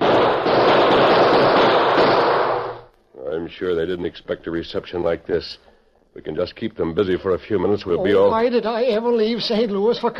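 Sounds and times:
gunfire from several guns at once: 0.0 - 2.9
speech: 3.5 - 10.1.

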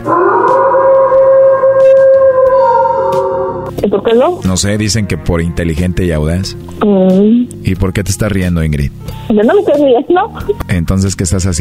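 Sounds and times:
wolf howling: 0.0 - 3.8
speech: 3.8 - 11.5.

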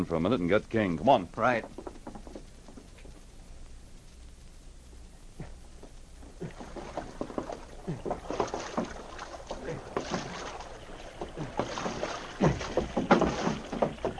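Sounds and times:
speech: 0.0 - 1.8
canoe paddle dipping and pulling through water: 6.4 - 14.1.

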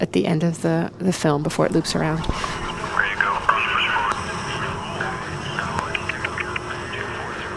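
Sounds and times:
speech: 0.0 - 2.6
military drone humming in night sky: 0.6 - 7.5
faint voice-like sounds: 2.0 - 7.5.

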